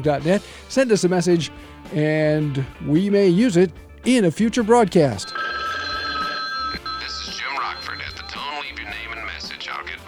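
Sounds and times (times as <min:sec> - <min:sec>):
speech: 0:00.0 - 0:05.4
telephone bell ringing with a bright metallic trill: 0:05.1 - 0:09.8.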